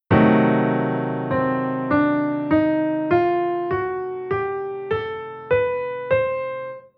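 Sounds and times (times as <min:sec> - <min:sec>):
diminished seventh chord scale: 0:00.1 - 0:06.8.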